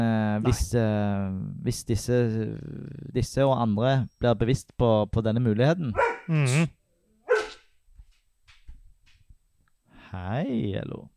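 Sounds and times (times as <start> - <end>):
speech: 0.0 - 6.8, 10.1 - 11.1
dog barking at a cat: 6.0 - 6.3, 7.2 - 7.6.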